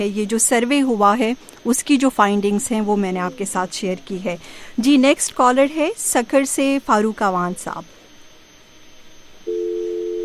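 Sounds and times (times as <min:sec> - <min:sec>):
speech: 0:00.0 - 0:08.0
steady telephone tone after a dropped line: 0:09.5 - 0:10.2.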